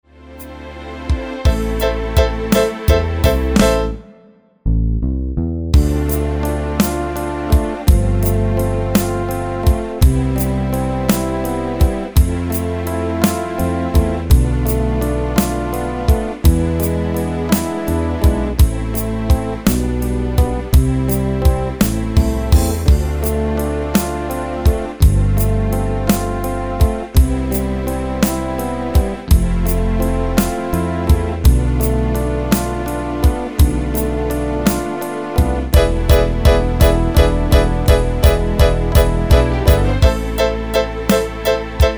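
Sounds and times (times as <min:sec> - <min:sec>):
backing track at full speed: 0:00.2 - 0:04.6, 0:05.8 - 0:41.9.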